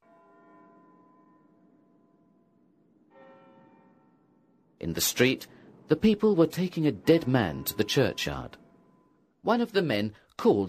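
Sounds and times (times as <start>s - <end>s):
church bell ringing: 0.0s - 9.5s
speech: 4.8s - 8.6s, 9.4s - 10.6s.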